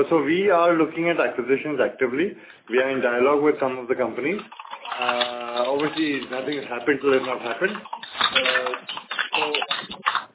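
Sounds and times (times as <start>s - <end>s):
speech: 0.0s - 9.0s
computer keyboard typing over a phone line: 4.4s - 10.3s.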